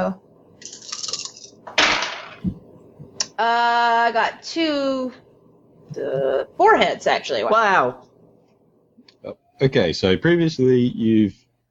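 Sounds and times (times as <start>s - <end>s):
speech: 0.0s - 0.8s, 3.4s - 5.2s, 5.9s - 8.1s, 9.2s - 11.4s
six dice rolled onto a hard surface: 0.6s - 2.4s.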